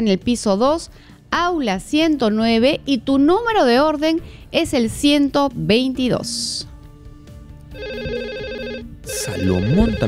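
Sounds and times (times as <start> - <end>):
speech: 0.0 - 6.7, 9.0 - 10.0
telephone ringing for an incoming call: 7.7 - 10.0.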